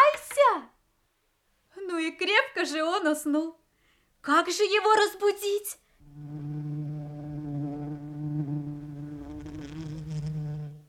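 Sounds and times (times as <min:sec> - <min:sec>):
speech: 0:02.2 - 0:03.6, 0:04.2 - 0:06.4
bee buzzing: 0:06.1 - 0:10.8.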